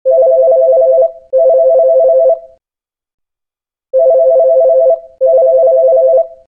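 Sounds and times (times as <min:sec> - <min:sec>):
normal phone ringtone: 0:00.1 - 0:02.6, 0:04.0 - 0:06.4.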